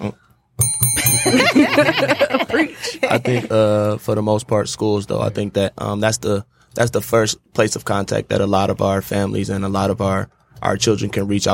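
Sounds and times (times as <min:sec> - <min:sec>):
speech: 0:00.0 - 0:00.2, 0:01.2 - 0:11.5
bright bell being struck: 0:00.6 - 0:02.3
voices and light laughter: 0:01.2 - 0:03.9.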